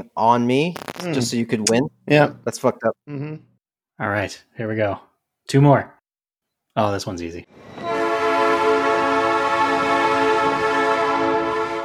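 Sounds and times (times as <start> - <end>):
speech: 0.0 - 6.0, 6.8 - 7.9
British commuter train passing with electric whine: 7.5 - 11.8.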